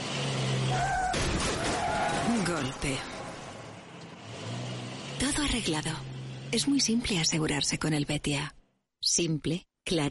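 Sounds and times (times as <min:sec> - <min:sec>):
car engine droning with a rising whine: 0:00.0 - 0:07.6
speech: 0:02.6 - 0:03.2, 0:05.3 - 0:10.0.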